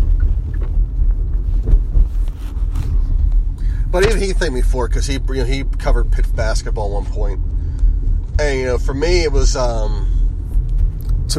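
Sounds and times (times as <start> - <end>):
soft thumps: 0.0 - 4.4
low-frequency road rumble inside a car driving through rush-hour traffic: 0.0 - 11.3
speech: 4.0 - 7.5, 8.4 - 10.1.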